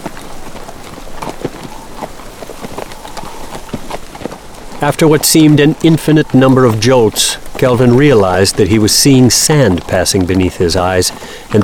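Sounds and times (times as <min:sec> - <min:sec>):
horse hooves clip-clopping on sand: 0:00.0 - 0:11.6
steady rough hiss: 0:00.0 - 0:11.6
speech: 0:04.8 - 0:11.6.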